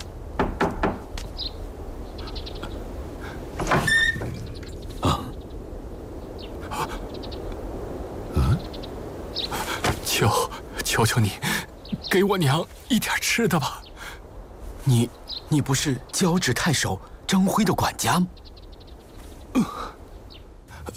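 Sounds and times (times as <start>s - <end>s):
steady hiss: 0.0s - 20.9s
sharp knocks on a door: 0.4s - 1.1s
faint bird chirps: 1.2s - 20.9s
speech: 11.0s - 11.5s, 12.1s - 13.8s, 14.9s - 18.4s.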